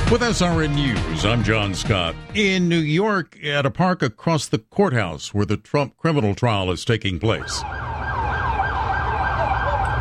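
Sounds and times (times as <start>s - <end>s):
speech: 0.1s - 8.0s
ambulance siren wailing in New York: 7.2s - 9.9s.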